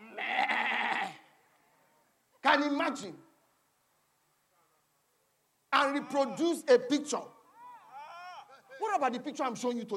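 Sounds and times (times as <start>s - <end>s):
goat bleating: 0.0s - 1.2s
speech: 2.6s - 3.3s, 5.9s - 7.4s, 8.9s - 9.9s.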